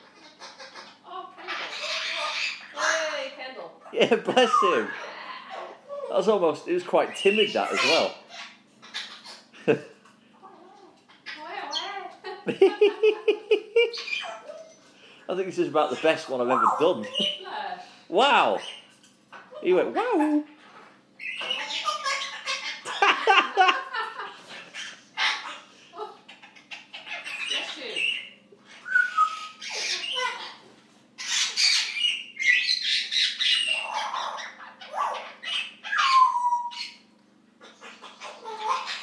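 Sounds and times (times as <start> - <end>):
bird calling and squawking: 0.0 - 5.8, 6.9 - 9.6, 13.8 - 15.0, 15.8 - 17.5, 18.1 - 23.2, 24.5 - 39.0
speech: 4.0 - 5.1, 6.1 - 8.2, 9.6 - 9.9, 12.5 - 14.4, 15.3 - 18.7, 19.6 - 20.5
laughter: 12.2 - 14.0, 22.8 - 24.6.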